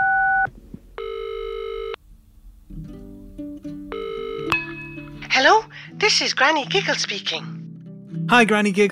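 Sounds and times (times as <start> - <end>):
electronic telephone ringing tone: 0.0 - 2.0, 3.9 - 4.6
speech: 5.4 - 7.5, 8.3 - 8.9.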